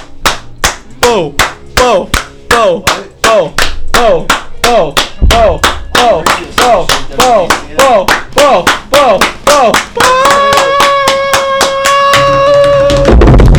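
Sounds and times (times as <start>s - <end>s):
group clapping: 0.0s - 13.4s
speech: 1.2s - 10.4s
voices whooping and holding a sustained note: 10.0s - 13.2s.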